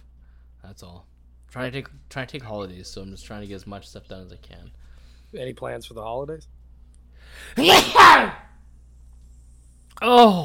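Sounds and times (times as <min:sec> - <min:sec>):
speech: 0:00.6 - 0:06.6, 0:07.2 - 0:08.4, 0:10.0 - 0:10.4
loud sneeze: 0:07.5 - 0:08.5.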